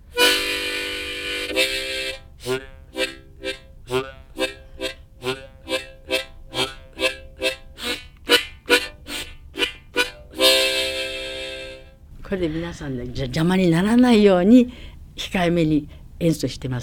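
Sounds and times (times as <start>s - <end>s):
reedy bass harmonica playing: 0.0s - 12.1s
speech: 12.4s - 16.8s.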